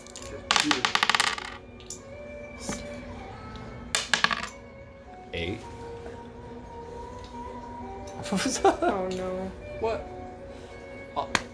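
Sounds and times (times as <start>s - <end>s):
dice rolling across a hard tabletop: 0.0s - 1.6s, 4.0s - 4.5s
speech: 5.4s - 5.8s, 8.3s - 10.2s
laughter: 8.3s - 9.1s.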